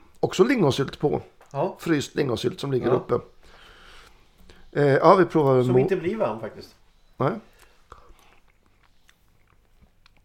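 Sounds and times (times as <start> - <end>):
speech: 0.2 - 3.3, 4.7 - 7.5
faint soft mouth clicks: 7.5 - 10.2
person chewing a mouthful of mashed potato: 7.5 - 10.2.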